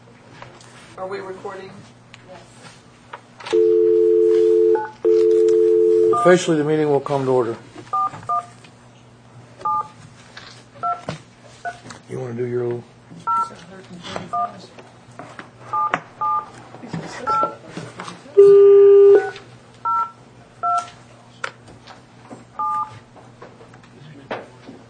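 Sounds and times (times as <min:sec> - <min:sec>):
faint room murmur: 0:00.0 - 0:04.9, 0:06.0 - 0:24.8
speech: 0:01.0 - 0:02.8, 0:06.2 - 0:07.7
telephone keypad tones beeping: 0:03.5 - 0:06.3, 0:18.4 - 0:20.8.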